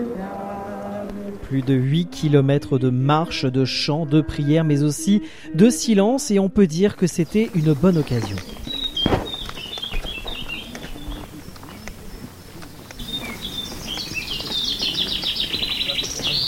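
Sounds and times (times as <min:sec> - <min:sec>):
speech: 0:01.5 - 0:08.7
birds singing and chirping outdoors on a sunny day: 0:06.9 - 0:16.4.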